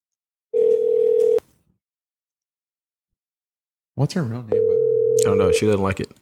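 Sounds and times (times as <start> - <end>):
telephone dial tone: 0.6 - 1.4, 4.6 - 5.7
speech: 4.0 - 6.2.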